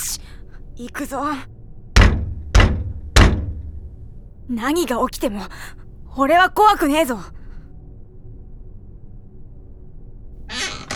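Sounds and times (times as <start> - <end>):
speech: 0.8 - 1.6, 4.5 - 7.4
heavy hollow knocking on a door: 2.0 - 3.7.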